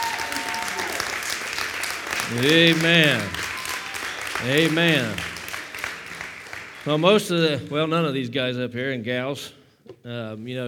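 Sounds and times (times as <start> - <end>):
audience clapping in appreciation: 0.0 - 7.9
speech: 2.3 - 3.4, 4.4 - 5.3, 6.8 - 10.6.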